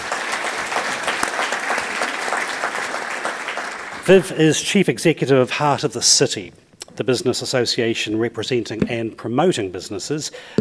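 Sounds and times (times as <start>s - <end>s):
crowd applauding: 0.0s - 4.3s
speech: 4.0s - 10.6s.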